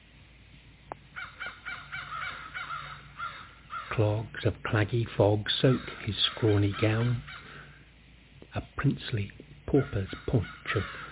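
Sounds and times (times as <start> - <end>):
crows cawing: 1.1 - 4.2, 5.6 - 7.9, 9.8 - 11.0
speech: 4.0 - 7.3, 8.5 - 11.0.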